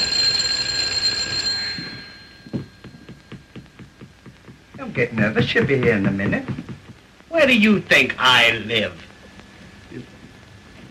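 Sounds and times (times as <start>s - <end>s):
bright electric doorbell ringing: 0.0s - 3.1s
soft irregular thumps: 2.5s - 7.0s
speech: 5.0s - 6.6s, 7.3s - 9.0s.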